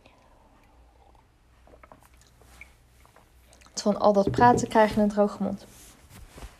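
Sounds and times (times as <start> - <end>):
person sipping tea: 0.0 - 3.8
speech: 3.8 - 5.7.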